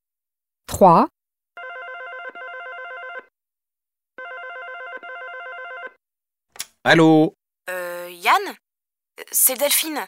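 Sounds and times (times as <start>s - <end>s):
speech: 0.8s - 1.1s, 6.8s - 8.6s, 9.2s - 10.0s
telephone ringing on a call to someone's home: 1.6s - 3.3s, 4.2s - 6.0s.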